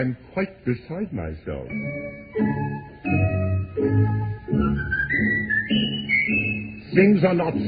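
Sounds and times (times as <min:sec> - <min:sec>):
speech: 0:00.0 - 0:03.3, 0:07.0 - 0:07.6
steady instrumental accompaniment: 0:01.6 - 0:07.6
person whistling a bright rising tune: 0:04.6 - 0:06.9.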